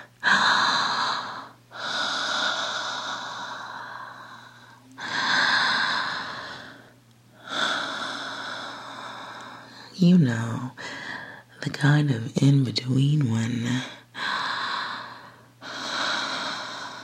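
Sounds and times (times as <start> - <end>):
slow deep breathing: 0.0 - 10.0, 10.8 - 11.5, 14.1 - 17.0
speech: 10.1 - 10.6, 11.6 - 14.0.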